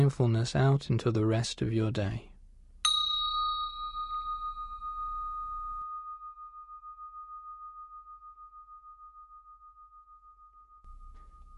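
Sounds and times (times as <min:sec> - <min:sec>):
speech: 0:00.1 - 0:02.3
meditation bell struck during a mindfulness exercise: 0:02.8 - 0:11.5.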